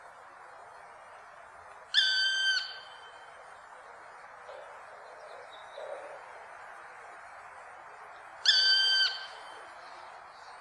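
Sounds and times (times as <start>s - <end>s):
steady background hiss: 0.0s - 10.5s
black woodpecker giving a plaintive ringing call: 2.0s - 3.1s.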